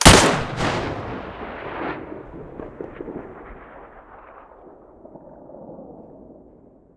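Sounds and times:
Mosin rifle muzzle blast: 0.0 - 3.0.

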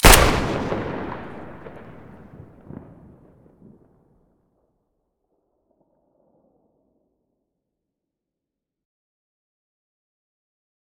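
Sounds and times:
Saiga rifle muzzle blast: 0.0 - 2.4.

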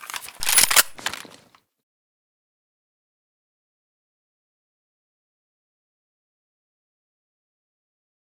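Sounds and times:
SVD rifle misfire: 0.0 - 1.5.

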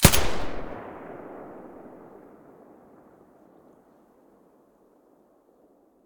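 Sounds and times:
silenced submachine gun shot: 0.0 - 2.2.

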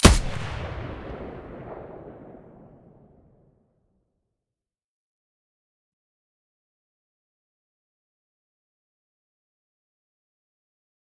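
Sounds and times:
MDR weapon muzzle blast: 0.0 - 3.1.

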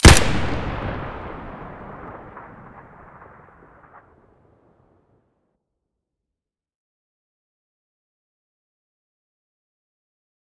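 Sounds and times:
SKS rifle shots: 0.0 - 4.0.

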